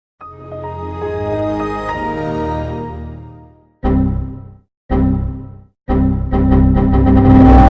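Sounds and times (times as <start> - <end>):
computer startup sound: 1.1 - 7.6.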